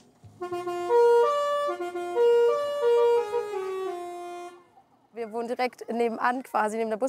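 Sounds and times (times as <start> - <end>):
mobile library bus musical horn playing a short melody: 0.3 - 4.8
speech: 5.4 - 7.0.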